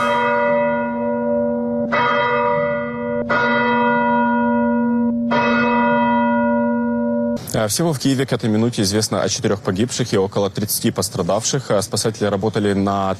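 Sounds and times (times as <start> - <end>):
church bells ringing: 0.0 - 7.5
speech: 7.6 - 13.1.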